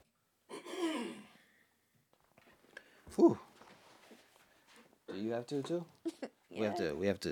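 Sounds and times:
throat-clearing cough: 0.5s - 1.4s
speech: 3.1s - 3.5s, 5.2s - 7.3s.

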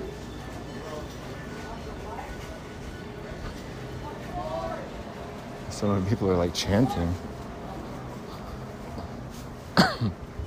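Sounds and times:
faint noise of a busy indoor space: 0.0s - 10.4s
speech: 5.8s - 7.3s
person coughing: 9.8s - 10.2s.

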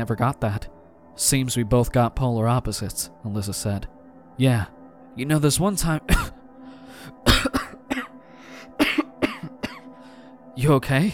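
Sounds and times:
speech: 0.0s - 6.0s, 10.6s - 11.1s
person clearing throat: 6.1s - 6.4s, 7.2s - 8.1s, 8.8s - 9.9s
person coughing: 6.1s - 6.4s, 7.2s - 8.2s, 8.8s - 9.9s.

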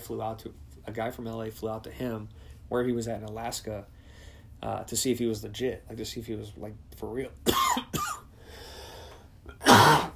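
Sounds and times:
speech: 0.1s - 4.0s, 4.6s - 8.1s
person coughing from a tickle in the throat: 7.5s - 8.3s, 9.5s - 10.1s.

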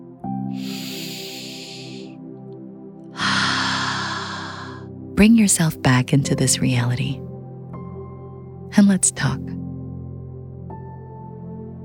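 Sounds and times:
deep inhale and exhale: 0.5s - 2.1s, 3.2s - 4.9s
speech: 5.2s - 7.3s, 8.8s - 9.6s.

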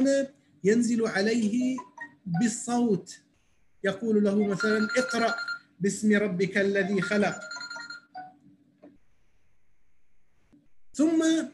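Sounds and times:
speech: 0.0s - 3.2s, 3.8s - 7.5s, 11.0s - 11.5s
telephone ringing with bright electronic chime: 4.4s - 5.7s, 6.6s - 8.4s.

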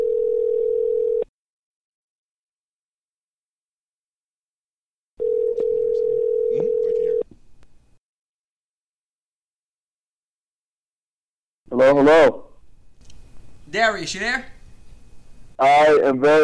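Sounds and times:
phone call ringback tones: 0.0s - 1.3s, 5.2s - 7.2s
speech: 11.8s - 12.4s, 13.7s - 14.6s, 15.6s - 16.4s.

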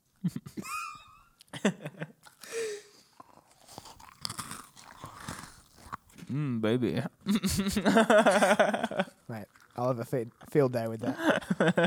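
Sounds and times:
speech: 0.2s - 0.7s, 6.3s - 11.8s
close-miked eating and chewing with crunches and wet bites: 3.2s - 6.2s.

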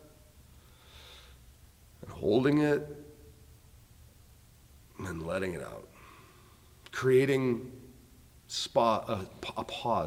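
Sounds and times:
soft airy intake of breath: 0.6s - 1.4s
speech: 2.2s - 3.1s, 5.1s - 5.9s, 7.0s - 7.8s, 8.5s - 10.0s.

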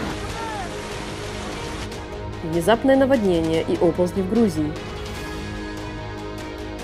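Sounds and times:
heavy rain and hail pounding down: 0.0s - 2.0s
speech: 2.4s - 4.9s.

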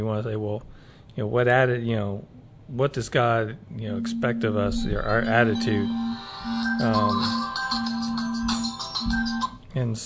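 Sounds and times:
speech: 0.0s - 7.9s, 9.8s - 10.0s
mobile phone ringing with a synthetic melodic ringtone: 4.0s - 9.6s.

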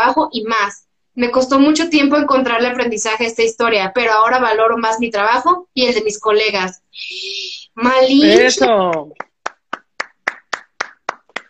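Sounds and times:
speech: 0.1s - 9.3s
single person clapping: 8.3s - 11.4s.

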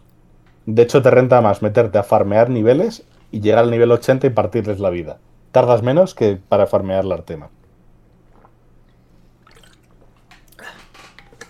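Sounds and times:
low steady hum: 0.0s - 11.4s
speech: 0.7s - 7.6s
water being poured or sipped: 8.1s - 11.4s
soft splashy bursts: 9.4s - 11.4s.

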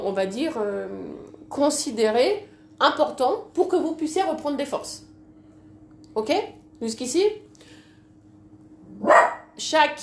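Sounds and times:
speech: 0.0s - 5.1s, 6.2s - 7.4s, 9.0s - 10.0s
humming room tone: 0.0s - 10.0s
dog barking: 9.0s - 9.6s.

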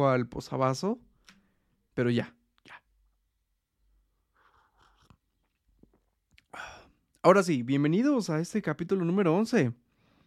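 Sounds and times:
speech: 0.0s - 1.1s, 2.0s - 2.8s, 6.6s - 9.8s
person sipping a drink: 4.4s - 6.7s.

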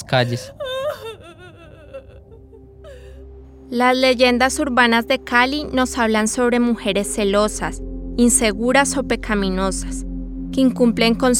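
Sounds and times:
speech: 0.1s - 1.0s, 3.7s - 11.3s
ghostly woman's high quavering wail: 0.1s - 3.2s.

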